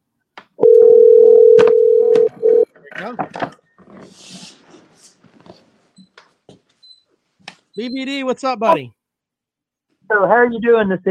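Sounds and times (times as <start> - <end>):
telephone dial tone while placing a call: 0.6 - 2.6
speech: 3.0 - 3.6, 7.8 - 9.0, 10.1 - 11.1.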